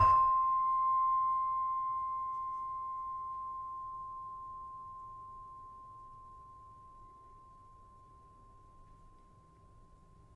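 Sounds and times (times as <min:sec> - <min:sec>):
saron note C: 0:00.0 - 0:10.0.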